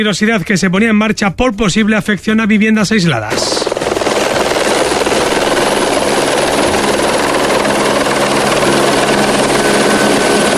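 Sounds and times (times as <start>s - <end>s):
speech: 0.0s - 4.0s
firefighting helicopter flying: 3.1s - 10.5s.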